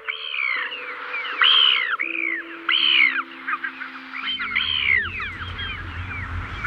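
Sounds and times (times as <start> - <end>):
Ivory Gull calls with loud harsh arched notes: 0.0 - 6.6
low steady hum: 4.2 - 6.6
rumbling noise: 4.4 - 6.6.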